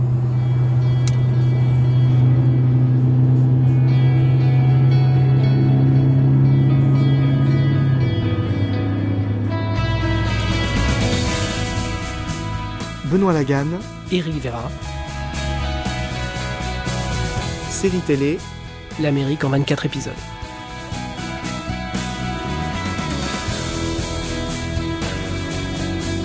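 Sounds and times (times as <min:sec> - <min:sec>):
car engine revving and pulling away: 0:00.0 - 0:19.0, 0:20.2 - 0:26.2
road noise: 0:00.0 - 0:26.2
speech: 0:13.2 - 0:15.0, 0:17.8 - 0:20.3.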